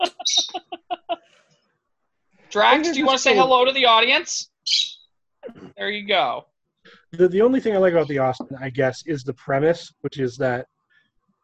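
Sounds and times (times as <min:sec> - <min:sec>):
small pet bird chirping: 0:00.0 - 0:01.1, 0:04.5 - 0:05.1
speech: 0:02.5 - 0:04.5, 0:05.8 - 0:06.5, 0:07.1 - 0:10.7
small pet bird warbling trill: 0:04.6 - 0:05.1.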